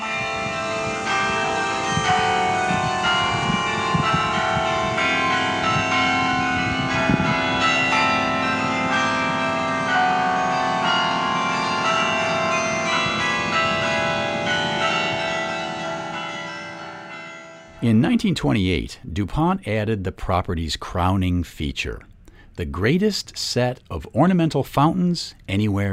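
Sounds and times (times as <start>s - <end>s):
carillon bells playing a melody from a tower: 0.0s - 18.5s
speech: 17.9s - 25.9s.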